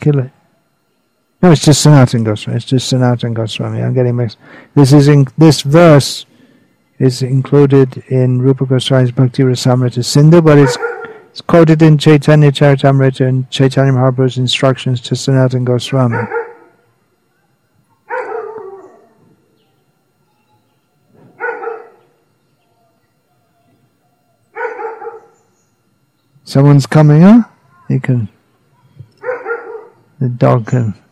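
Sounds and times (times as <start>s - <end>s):
speech: 0.0s - 0.4s, 1.4s - 6.3s, 7.0s - 16.4s, 26.5s - 28.4s, 30.2s - 31.0s
dog barking: 10.5s - 11.4s, 16.0s - 19.2s, 21.2s - 22.2s, 24.5s - 25.4s, 28.7s - 30.1s.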